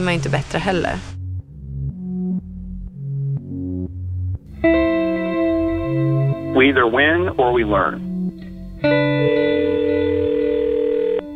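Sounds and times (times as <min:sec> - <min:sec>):
speech: 0:00.0 - 0:01.2, 0:06.6 - 0:08.0
faint low notes: 0:01.2 - 0:11.0
telephone ringing tone of an outgoing call to a sports psychologist: 0:09.2 - 0:11.3.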